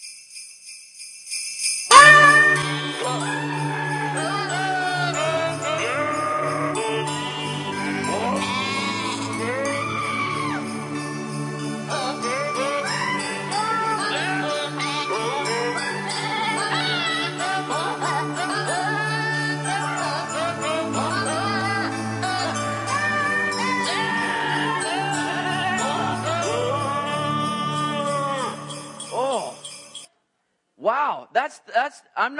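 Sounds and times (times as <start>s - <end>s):
continuous musical backing: 1.9s - 29.8s
goats bleating a Christmas carol melody: 8.1s - 9.6s
speech: 31.5s - 32.3s.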